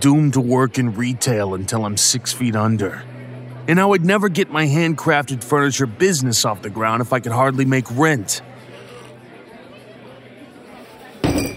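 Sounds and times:
speech: 0:00.0 - 0:08.6
faint murmur: 0:00.0 - 0:11.5
glass slammed down hard on bar top: 0:11.2 - 0:11.5.

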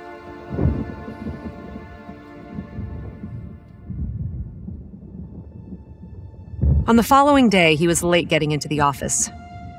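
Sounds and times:
deep rolling thunder: 0:00.4 - 0:09.7
speech: 0:06.9 - 0:09.4.

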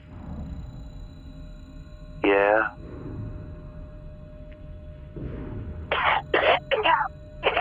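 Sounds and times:
wet phlegmy coughs: 0:05.9 - 0:07.6.

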